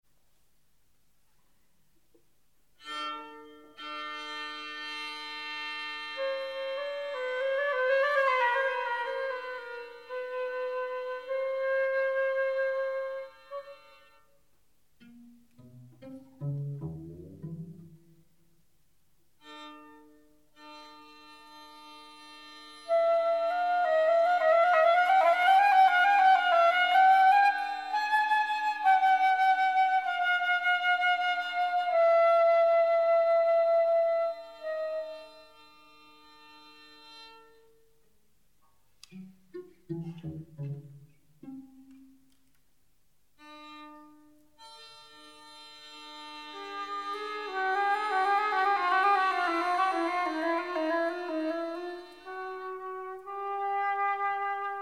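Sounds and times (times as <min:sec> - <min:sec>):
trio for flute, viola and cello: 0:03.9 - 0:14.4, 0:21.3 - 0:37.3, 0:44.6 - 0:54.8.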